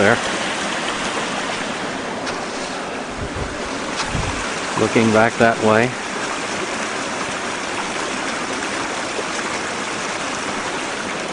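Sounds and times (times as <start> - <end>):
faint wind buffeting: 0.0 - 7.4
creek water flowing down through waterfalls in heavy snow: 0.0 - 11.3
speech: 0.1 - 0.4, 4.8 - 6.0.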